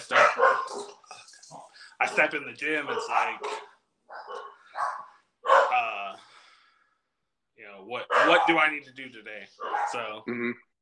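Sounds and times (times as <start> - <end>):
dogs barking indoors: 0.0 - 6.0, 8.0 - 8.8, 9.6 - 10.2
speech: 2.1 - 3.6, 7.9 - 10.7.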